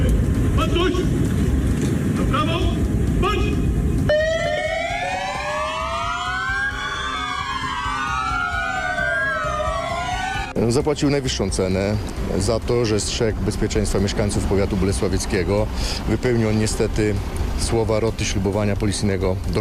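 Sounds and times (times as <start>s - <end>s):
low rumbling: 0.0s - 19.5s
several police car sirens wailing together: 3.7s - 10.6s
speech: 10.6s - 19.5s.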